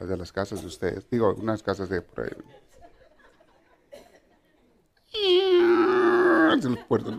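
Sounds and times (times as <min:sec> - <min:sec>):
speech: 0:00.0 - 0:02.6, 0:06.5 - 0:07.1
laughter: 0:02.4 - 0:04.8, 0:06.3 - 0:07.1
voice imitating huge old door hinges creaking open: 0:05.1 - 0:06.6.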